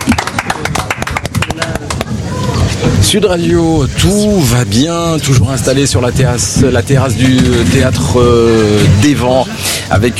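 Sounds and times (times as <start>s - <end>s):
small group of studio guests applauding on a theatre terrace: 0.0s - 2.3s
speech: 3.1s - 10.1s.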